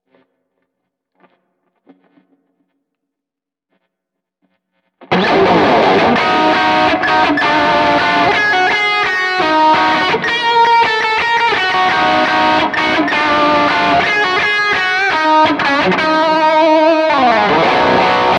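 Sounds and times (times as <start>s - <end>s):
guitar: 5.0s - 18.3s.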